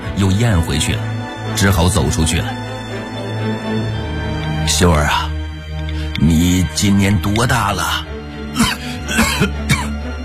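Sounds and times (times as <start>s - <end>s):
speech: 0.2s - 2.7s, 3.4s - 5.3s, 6.2s - 8.8s, 9.4s - 9.6s
sick old man coughing: 8.5s - 10.0s.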